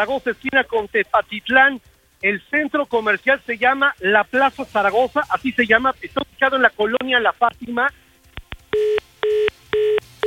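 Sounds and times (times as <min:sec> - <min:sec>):
speech: 0:00.0 - 0:08.0
steady telephone line beeps as a call cuts off: 0:08.8 - 0:10.2.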